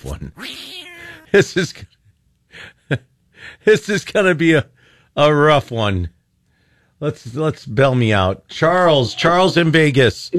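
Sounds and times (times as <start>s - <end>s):
speech: 1.3s - 1.9s, 2.6s - 6.2s, 7.0s - 10.3s
cat yowling: 8.8s - 9.6s.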